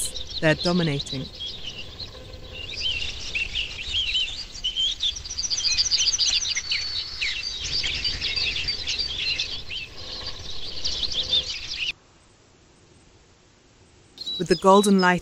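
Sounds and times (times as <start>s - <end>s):
artificial and real birdsong chorus: 0.0s - 12.0s, 14.2s - 15.2s
speech: 0.4s - 1.4s, 14.4s - 15.2s.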